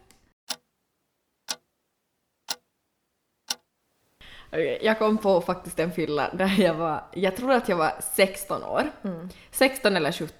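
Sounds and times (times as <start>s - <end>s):
clock ticking: 0.5s - 0.7s, 3.5s - 3.7s
speech: 4.5s - 10.3s.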